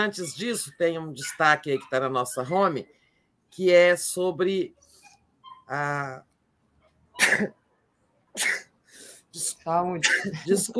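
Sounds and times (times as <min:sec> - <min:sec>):
speech: 0:00.0 - 0:04.8, 0:05.7 - 0:06.3, 0:07.2 - 0:07.6, 0:08.4 - 0:08.6, 0:09.4 - 0:10.7
person sneezing: 0:07.2 - 0:07.6, 0:08.4 - 0:09.2.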